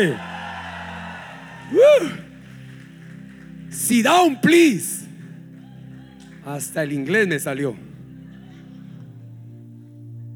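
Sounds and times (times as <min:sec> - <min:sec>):
speech: 0:00.0 - 0:00.3, 0:01.7 - 0:02.2, 0:03.8 - 0:05.0, 0:06.4 - 0:07.9
church audience giving a victory shout: 0:00.0 - 0:02.2.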